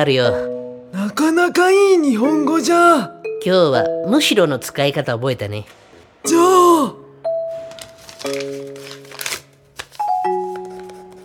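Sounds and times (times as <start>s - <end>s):
speech: 0.0s - 7.0s
sheet of paper rustling and crinkling as it is handed over: 7.5s - 11.2s.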